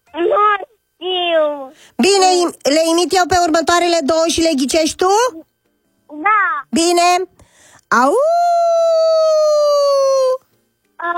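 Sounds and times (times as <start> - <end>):
speech: 1.5 - 5.5, 6.2 - 9.0, 11.0 - 11.1
person imitating a wolf howl in an animal-imitation guessing game: 8.1 - 10.4.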